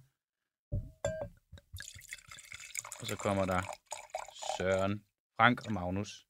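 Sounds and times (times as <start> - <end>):
wine glass clinking: 0.8 - 2.6
wine being poured into a glass: 1.7 - 5.9
speech: 3.0 - 3.8, 4.6 - 6.2.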